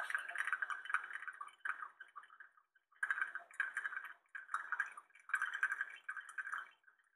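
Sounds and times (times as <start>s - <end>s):
coffee dripping and gurgling into a cup: 0.0s - 7.1s.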